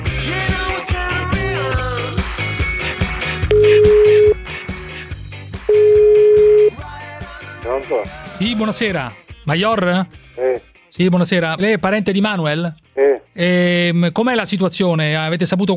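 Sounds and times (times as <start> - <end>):
music: 0.0 - 15.7
telephone ringback tone while a call is placed: 3.5 - 4.4, 5.7 - 6.8
speech: 8.4 - 15.7.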